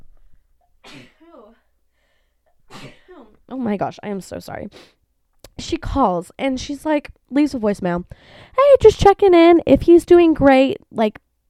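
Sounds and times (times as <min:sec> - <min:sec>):
abrupt breath: 0:01.9 - 0:02.5, 0:08.1 - 0:08.6
loud human sneeze trailing into a short voiced wail: 0:02.7 - 0:03.3
speech: 0:02.8 - 0:05.0, 0:05.6 - 0:11.4.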